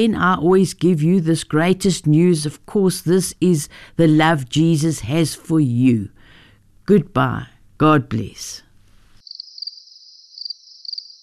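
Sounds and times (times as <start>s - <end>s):
speech: 0.0s - 6.2s, 6.9s - 8.6s
crickets chirping: 9.2s - 11.2s.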